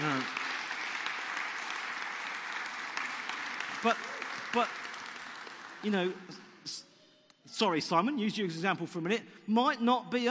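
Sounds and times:
audience at a meeting applauding sound engineers: 0:00.0 - 0:06.2
speech: 0:03.8 - 0:04.8, 0:05.8 - 0:06.9, 0:07.5 - 0:10.2.

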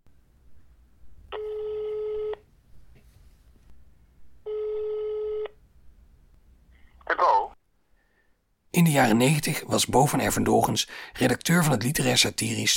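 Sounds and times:
ringing tone of an outgoing telephone call: 0:01.3 - 0:02.4, 0:04.4 - 0:05.6
speech: 0:08.8 - 0:12.7.

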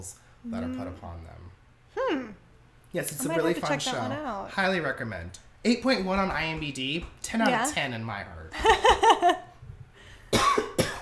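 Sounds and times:
speech: 0:00.0 - 0:09.4
laughter: 0:08.6 - 0:09.5
person coughing: 0:10.3 - 0:11.0.

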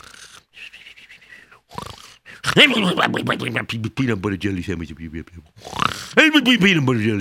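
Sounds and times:
voice imitating loud exaggerated snoring: 0:00.0 - 0:00.5, 0:01.6 - 0:03.7, 0:05.5 - 0:06.2
speech: 0:02.6 - 0:07.1.

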